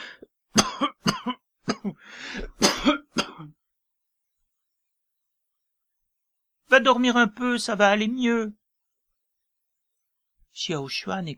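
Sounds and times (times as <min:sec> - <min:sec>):
person coughing harshly: 0:00.6 - 0:03.6
speech: 0:06.8 - 0:08.6, 0:10.6 - 0:11.3.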